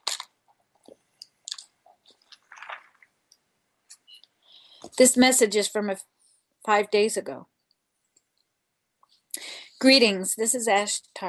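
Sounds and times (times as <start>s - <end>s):
wet mouth noises from sipping a drink: 0.0s - 3.1s
person swallowing a drink: 2.2s - 3.1s
speech: 4.9s - 6.1s, 6.7s - 7.5s, 9.8s - 11.2s.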